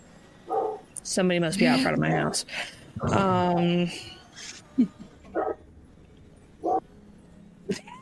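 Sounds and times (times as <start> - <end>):
dog barking: 0.5 - 0.8, 5.4 - 5.6, 6.6 - 6.8
speech: 1.0 - 5.5.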